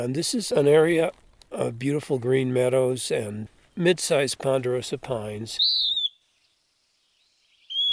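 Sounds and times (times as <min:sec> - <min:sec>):
speech: 0:00.0 - 0:06.0
pewee flycatcher singing thin slurred whistles in meadows with ponderosa pines: 0:05.6 - 0:06.2, 0:07.6 - 0:07.9.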